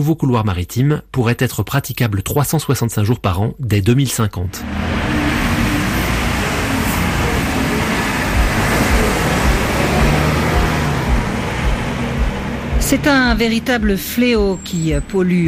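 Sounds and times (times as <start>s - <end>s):
speech: 0.0s - 5.2s, 12.9s - 15.4s
dense road traffic with cars passing: 4.5s - 15.4s.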